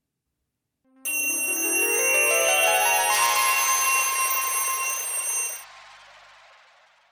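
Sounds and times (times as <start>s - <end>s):
electric bell ringing: 1.1s - 5.6s.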